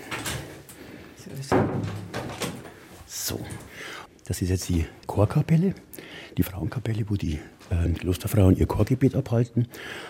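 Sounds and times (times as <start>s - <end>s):
speech: 1.3s - 2.2s, 3.3s - 10.0s
door knock and rattle: 1.5s - 2.6s.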